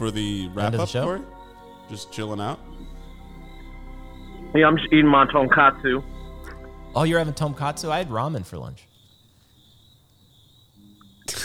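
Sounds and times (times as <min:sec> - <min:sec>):
speech: 0:00.0 - 0:02.9, 0:04.5 - 0:06.1, 0:06.9 - 0:08.9
crickets chirping with a high-pitched trill: 0:00.0 - 0:11.4
sudden loud sharp sneeze-like burst: 0:11.2 - 0:11.4.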